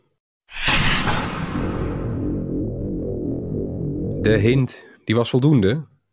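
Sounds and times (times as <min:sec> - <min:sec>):
nuclear reactor starting up: 0:00.6 - 0:04.7
speech: 0:04.2 - 0:05.9.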